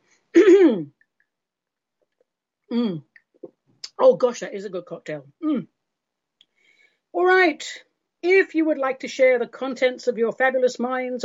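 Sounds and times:
person clearing throat after burning sage: 0:00.4 - 0:01.0, 0:02.7 - 0:03.1
speech: 0:02.7 - 0:03.1, 0:04.0 - 0:05.8, 0:07.1 - 0:11.2.

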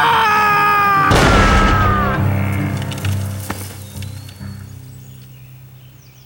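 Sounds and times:
gunshot from a pulled trigger: 0:01.1 - 0:03.6.

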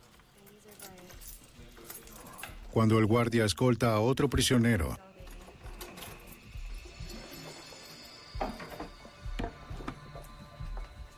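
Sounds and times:
small metal keys on a keychain jingling and scraping: 0:00.0 - 0:02.8, 0:05.2 - 0:11.1
speech: 0:02.8 - 0:05.1.

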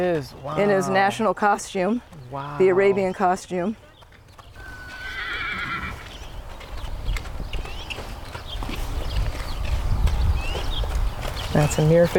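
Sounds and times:
speech: 0:00.0 - 0:03.8, 0:11.6 - 0:12.1
Arabian horse hooves clopping in a prancing rhythm on the ground: 0:00.0 - 0:12.1
Arabian horse in Arabian costume whinnying: 0:04.6 - 0:06.0.

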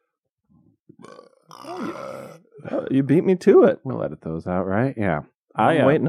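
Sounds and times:
loud drawn-out throaty burp: 0:01.0 - 0:03.0
speech: 0:01.0 - 0:06.0.

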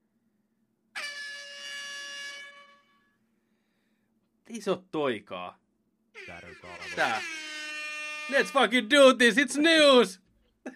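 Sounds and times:
DJ air horn blast: 0:01.0 - 0:03.2, 0:06.2 - 0:08.7
speech: 0:04.5 - 0:05.6, 0:06.2 - 0:07.4, 0:08.3 - 0:10.7.

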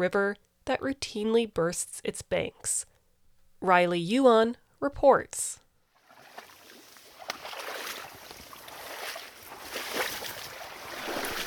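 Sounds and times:
speech: 0:00.0 - 0:02.9, 0:03.6 - 0:05.6
muck shifting in a tiny channel draining farm fields in Washington: 0:06.0 - 0:11.4.

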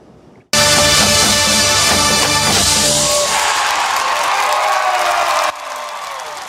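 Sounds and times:
marching band sustained brass chord: 0:00.6 - 0:04.0
large crowd cheering: 0:00.6 - 0:06.4
large crowd applause: 0:03.1 - 0:06.4.

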